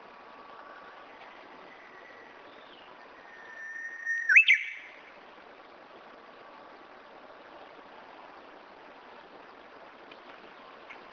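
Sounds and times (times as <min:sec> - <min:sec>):
Japanese bush warbler singing: 0:00.0 - 0:05.0.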